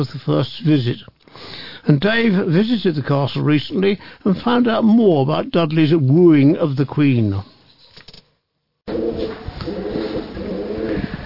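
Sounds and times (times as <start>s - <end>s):
speech: 0.0s - 7.5s
pigeons cooing at Kenilworth Castle: 8.9s - 11.2s.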